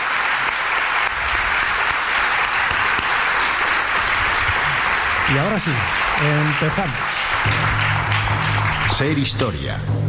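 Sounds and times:
large audience applauding in a hall: 0:00.0 - 0:09.8
speech: 0:05.3 - 0:10.0.

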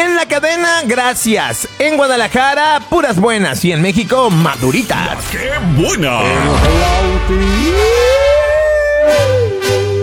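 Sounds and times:
speech: 0:00.2 - 0:08.2
person vocally imitating an ambulance siren: 0:07.1 - 0:10.0.

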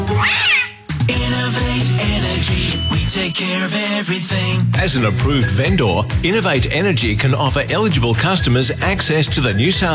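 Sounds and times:
cat meowing and yowling: 0:00.0 - 0:00.8
speech: 0:01.1 - 0:09.9.

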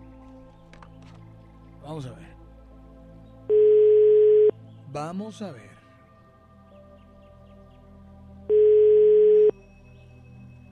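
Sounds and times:
speech: 0:01.8 - 0:02.4, 0:04.9 - 0:05.8
telephone ringback tone from an unanswered call: 0:03.5 - 0:04.5, 0:08.5 - 0:09.5.

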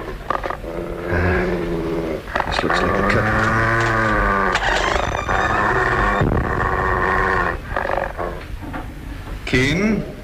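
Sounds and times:
dog growling: 0:00.4 - 0:08.5
speech: 0:09.5 - 0:10.1.

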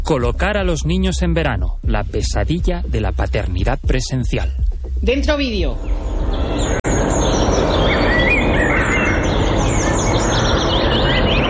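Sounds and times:
speech: 0:00.1 - 0:06.8
birds chirping and singing in a park: 0:05.5 - 0:11.4.

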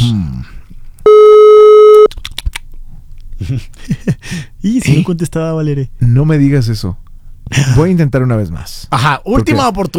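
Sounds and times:
electronic telephone line tone during outgoing call: 0:01.1 - 0:02.1
speech: 0:03.5 - 0:04.0, 0:04.6 - 0:09.9.

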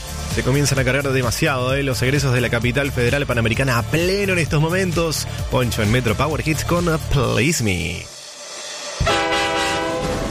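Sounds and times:
speech: 0:00.4 - 0:08.2
train carriage passing: 0:08.4 - 0:10.2
sustained horn-like harmonic tone: 0:09.0 - 0:10.2.

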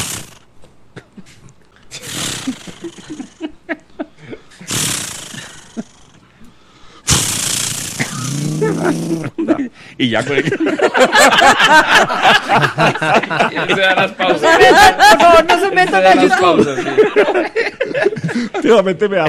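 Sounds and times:
laughter: 0:01.2 - 0:04.5, 0:08.4 - 0:19.2
voice imitating a chainsaw being started: 0:02.0 - 0:03.3, 0:04.7 - 0:06.2, 0:07.1 - 0:09.4
speech: 0:08.8 - 0:09.4, 0:10.0 - 0:17.7, 0:18.4 - 0:19.2.

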